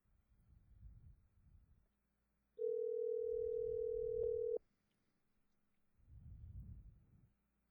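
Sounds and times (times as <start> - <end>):
telephone line ringing tone on a Google Voice call: 2.6 - 4.6.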